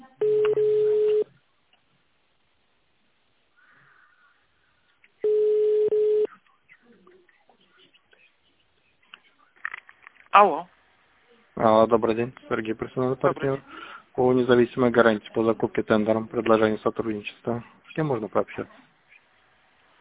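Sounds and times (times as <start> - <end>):
faint noise: 0.0 - 19.9
telephone ringback tone while a call is transferred to an operator: 0.2 - 1.3, 5.2 - 6.3
speech: 10.4 - 10.7, 11.6 - 18.9.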